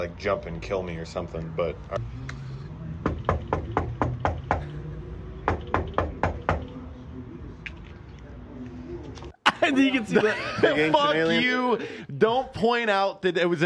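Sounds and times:
speech: 0.0 - 2.4, 9.8 - 13.6
knocking on a door: 3.0 - 4.7, 5.5 - 6.6
laughter: 9.4 - 12.0.

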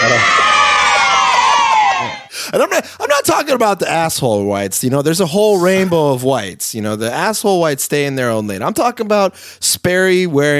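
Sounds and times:
crowd of children cheering and shouting: 0.0 - 2.3
speech: 2.5 - 10.5.

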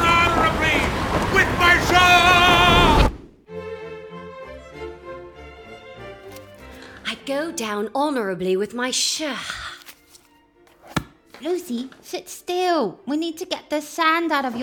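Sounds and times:
big wall of water crashing: 0.0 - 3.3
music: 3.5 - 14.6
speech: 7.6 - 9.7, 11.4 - 14.6.

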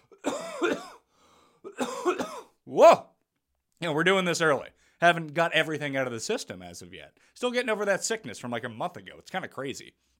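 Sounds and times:
person clearing throat: 0.0 - 2.6
speech: 2.7 - 3.1, 3.8 - 10.1.

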